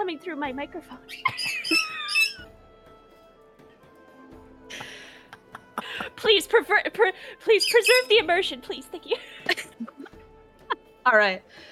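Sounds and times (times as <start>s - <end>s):
speech: 0.1s - 1.9s, 6.2s - 9.6s, 11.1s - 11.7s
pet birds squawking and chirping: 1.0s - 2.5s, 7.5s - 8.3s
laughter: 1.2s - 2.3s, 4.7s - 6.2s, 9.1s - 10.1s.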